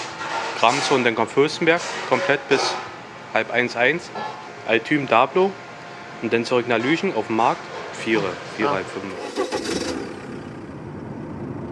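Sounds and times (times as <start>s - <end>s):
speech: 0.6s - 5.6s, 6.2s - 9.5s
bakery van engine and road rumble on narrow village roads: 8.4s - 11.7s.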